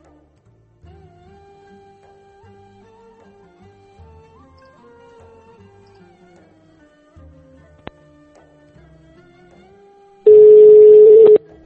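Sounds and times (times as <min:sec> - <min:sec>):
telephone tone after a conference call hangs up: 0:10.3 - 0:11.4.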